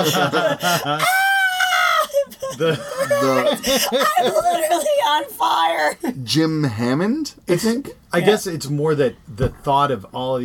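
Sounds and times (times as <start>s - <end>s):
speech: 0.0s - 1.2s, 2.5s - 10.4s
laughter: 0.0s - 5.3s
person mock-screaming imitating a comic-book character: 1.0s - 4.3s.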